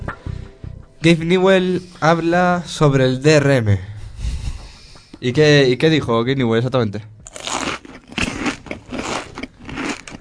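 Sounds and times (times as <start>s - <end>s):
speech: 1.0s - 3.9s, 5.2s - 7.1s
loud crunchy chewing of food: 7.3s - 10.1s.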